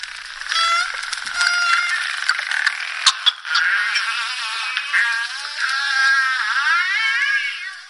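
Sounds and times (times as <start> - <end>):
bottlenose dolphin sharp clicks underwater: 0.0 - 6.2
bottlenose dolphin rapid buzzing pulse trains underwater while feeding at nets: 0.0 - 7.8.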